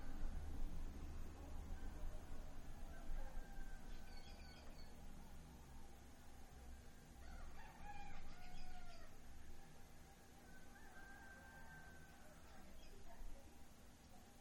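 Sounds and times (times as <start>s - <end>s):
low rumble of wind on a windy morning: 0.0s - 14.1s
rooster crowing at dawn in Suchiapa, Chiapas, Mexico: 2.7s - 4.8s, 7.2s - 9.2s, 10.4s - 12.6s.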